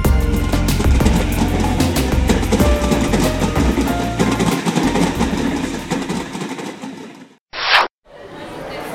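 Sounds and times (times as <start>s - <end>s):
train rolling along rails with rumble and rattle: 0.1s - 7.4s
short sharp burst: 7.5s - 7.9s.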